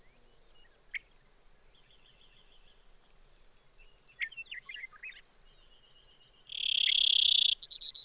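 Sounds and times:
quiet twittering: 0.0s - 8.0s
Brewer's sparrow buzz and trill: 6.5s - 8.0s.

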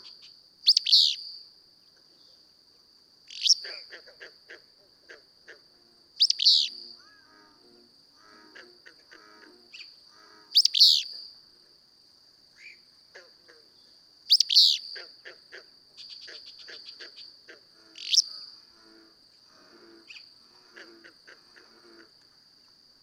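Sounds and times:
willow flycatcher song: 0.0s - 1.4s, 5.1s - 11.4s, 12.6s - 22.8s
high insect whine: 0.0s - 23.0s.

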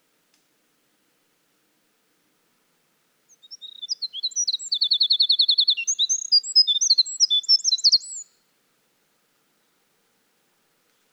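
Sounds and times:
winter wren song: 3.3s - 8.4s.

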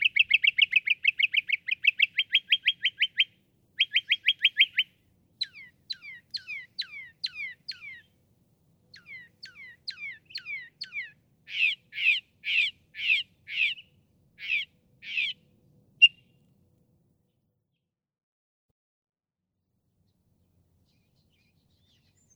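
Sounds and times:
Northern mockingbird singing: 0.0s - 8.1s, 8.9s - 16.4s, 20.9s - 22.3s.

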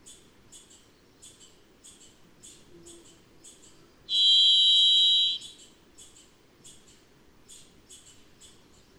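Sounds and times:
varied thrush giving a sustained buzzy whistled tone: 4.1s - 5.4s.

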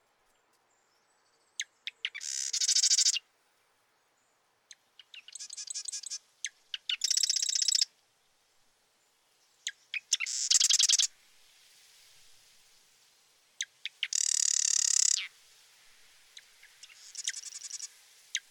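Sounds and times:
marsh wren singing: 1.4s - 3.2s, 5.0s - 7.9s, 9.6s - 11.1s, 13.8s - 15.3s, 16.6s - 18.4s.

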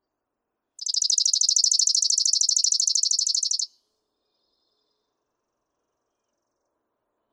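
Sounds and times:
Chipping Sparrow trilling sharp high chips: 0.8s - 3.7s.

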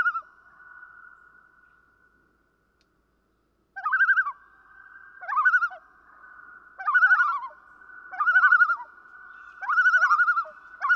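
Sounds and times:
common loon giving wobbling phrases: 3.8s - 4.4s, 5.2s - 5.8s, 6.8s - 8.9s, 9.6s - 10.9s.

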